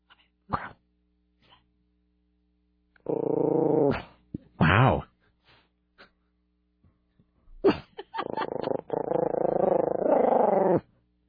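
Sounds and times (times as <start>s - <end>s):
dog growling in a low rumbling snarl: 3.0s - 4.2s, 8.2s - 10.9s.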